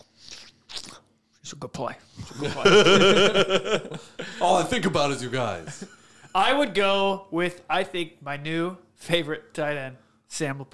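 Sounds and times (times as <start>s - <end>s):
voice imitating chomping on a wad of chewing tobacco: 0.0s - 1.1s
speech: 1.5s - 10.7s
laughter: 2.2s - 6.9s.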